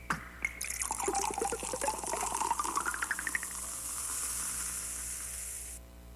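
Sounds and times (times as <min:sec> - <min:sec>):
crisp synthetic bubble tones: 0:00.0 - 0:03.8
soda pouring and fizzing: 0:00.4 - 0:05.8.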